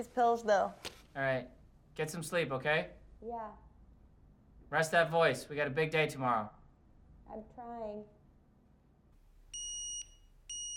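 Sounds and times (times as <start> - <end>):
speech: 0.0 - 3.6, 4.7 - 6.6, 7.3 - 8.2
digital alarm clock beeping in the morning: 9.6 - 10.7.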